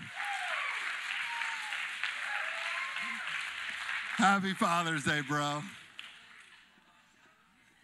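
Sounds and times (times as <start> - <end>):
people cheering: 0.0 - 5.7
audience applause: 0.0 - 6.6
speech: 4.2 - 5.8.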